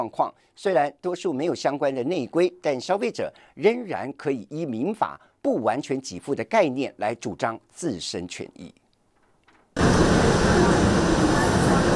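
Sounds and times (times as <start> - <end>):
speech: 0.0 - 8.8
train pulling into a station with rumble and hiss: 9.8 - 11.9.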